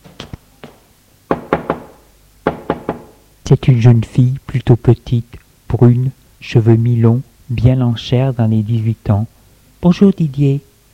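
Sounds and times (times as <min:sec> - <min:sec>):
knocking on a door: 0:01.3 - 0:03.2
speech: 0:03.5 - 0:10.7.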